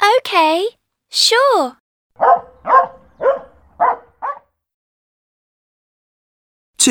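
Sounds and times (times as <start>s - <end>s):
speech: 0.3s - 2.4s
dog barking: 2.2s - 4.5s.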